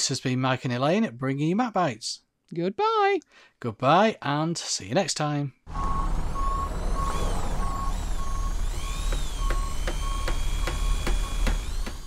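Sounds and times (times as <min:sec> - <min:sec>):
speech: 0:00.0 - 0:06.2
vehicle reversing alarm beeping at building work: 0:05.7 - 0:11.6
loud rumbling engine at building work: 0:05.7 - 0:11.9.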